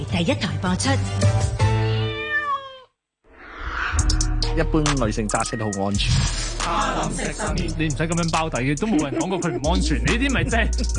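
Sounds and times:
speech: 0.0s - 1.6s, 4.6s - 10.9s
cat meowing: 1.8s - 3.0s
laughter: 6.6s - 7.7s, 8.5s - 10.9s.

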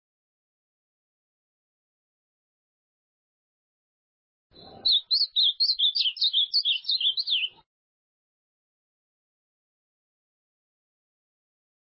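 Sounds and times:
ultramarine grosbeak song of warbled whistles: 4.6s - 7.6s.

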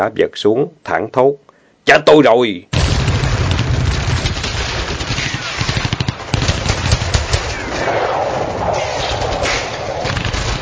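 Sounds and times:
speech: 0.0s - 2.7s
scattered single gunshots in a forest at night: 2.7s - 10.5s
automatic gunfire bursts from several guns in a forest at night: 3.5s - 7.6s
dense steady rumble: 7.6s - 10.5s.

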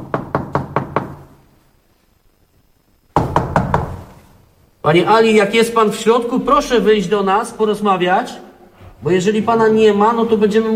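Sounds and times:
knuckles knocking on the door of a flat: 0.0s - 1.2s, 3.2s - 4.0s
speech: 4.8s - 10.7s.

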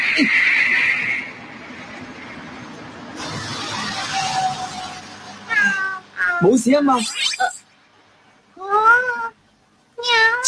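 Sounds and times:
speech: 0.2s - 0.8s, 6.4s - 7.5s
cartoon cat giving a drawn-out meow: 5.5s - 7.6s, 8.6s - 9.4s, 10.0s - 10.4s.

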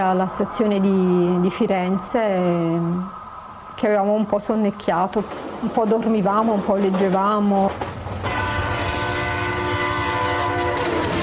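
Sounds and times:
speech: 0.0s - 3.2s, 3.8s - 7.7s
express passenger train roaring through a small station in Tuscany: 0.0s - 11.2s
steady horn-like tones of express passenger train: 8.2s - 11.2s.

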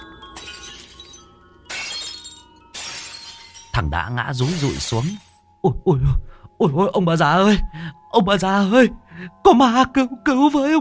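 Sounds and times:
cups and glasses shattering on the floor: 0.0s - 3.8s, 4.4s - 5.5s
tinkling glass shards: 0.0s - 5.5s
speech: 3.8s - 10.7s.

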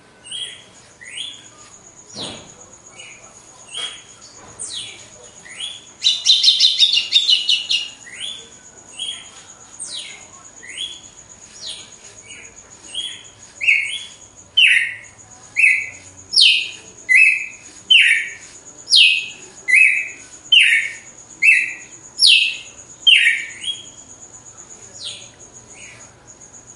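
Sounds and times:
faint steady hum: 0.0s - 26.7s
female red-cowled cardinal singing after the moult in a singing contest: 3.0s - 9.3s, 11.6s - 24.0s.

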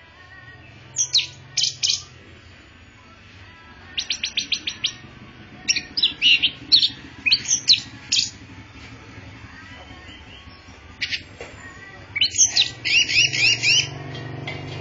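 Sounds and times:
orange-headed thrush singing vigorously with drooping-wing display: 0.6s - 2.2s, 3.9s - 8.5s, 9.7s - 11.3s, 12.1s - 14.3s.

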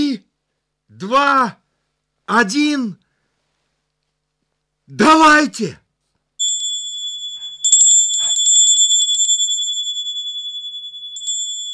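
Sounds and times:
speech: 0.9s - 1.6s, 2.3s - 3.0s, 4.9s - 5.8s
electric bell ringing after a button is pressed: 6.4s - 11.7s.

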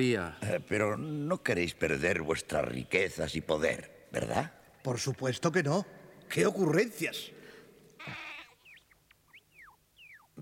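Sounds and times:
speech: 0.0s - 7.4s, 8.0s - 8.2s
goat bleating: 8.0s - 8.8s
faint high chirps: 8.0s - 10.4s.

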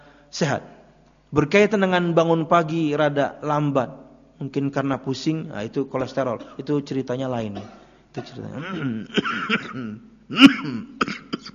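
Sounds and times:
speech: 0.3s - 11.5s
person coughing during an Islamic religious lecture: 7.5s - 11.5s.

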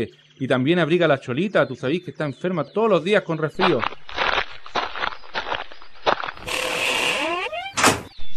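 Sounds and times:
speech: 0.0s - 4.1s
footsteps: 3.6s - 8.1s
door shutting with a firm thud: 6.4s - 8.2s.

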